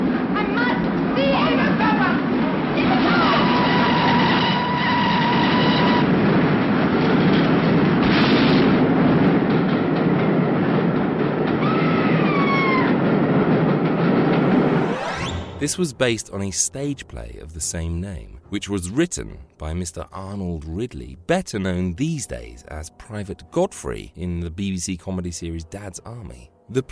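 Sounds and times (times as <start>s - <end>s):
train rumbling: 0.0s - 24.6s
train whistle: 2.9s - 6.2s
speech: 15.7s - 26.9s.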